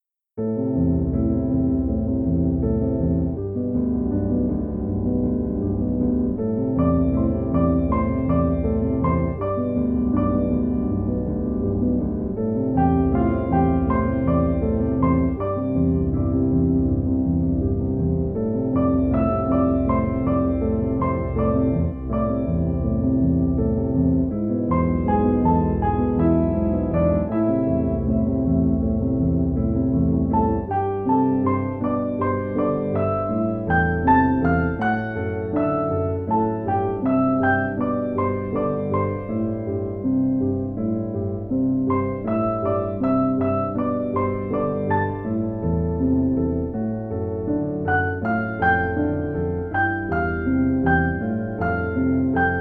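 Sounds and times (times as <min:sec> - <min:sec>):
peaceful piano music: 0:00.4 - 0:52.5.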